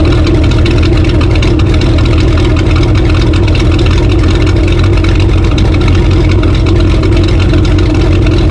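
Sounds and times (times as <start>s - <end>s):
tractor engine: 0.0s - 8.4s.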